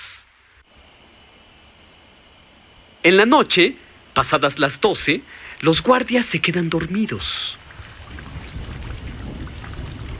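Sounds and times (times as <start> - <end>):
speech: 3.0 - 7.6
heavy rain pouring down: 6.7 - 10.1.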